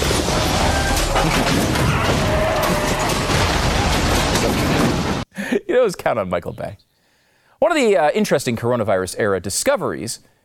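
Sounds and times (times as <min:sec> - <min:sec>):
loud sustained cinematic explosion roaring: 0:00.0 - 0:05.2
crackling explosion bursts: 0:00.0 - 0:05.3
dense rumbling explosion debris: 0:00.0 - 0:05.3
speech: 0:05.7 - 0:06.9, 0:07.6 - 0:10.4.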